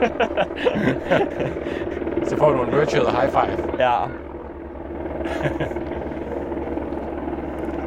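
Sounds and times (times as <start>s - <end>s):
laughter: 0.0s - 3.7s, 5.2s - 6.3s
speech: 0.0s - 4.3s, 5.2s - 6.0s
helicopter hovering: 0.0s - 7.8s.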